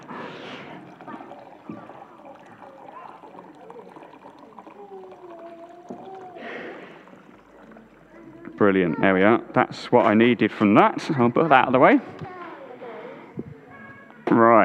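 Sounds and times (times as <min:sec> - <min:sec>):
water pouring slowly from a special jug: 0:00.0 - 0:10.3
faint voices murmuring: 0:00.7 - 0:10.6, 0:12.0 - 0:14.6
speech: 0:08.6 - 0:12.3.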